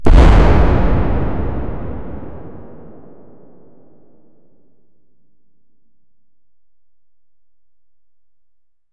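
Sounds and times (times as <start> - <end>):
red wooden barrel explosion: 0.1 - 3.5.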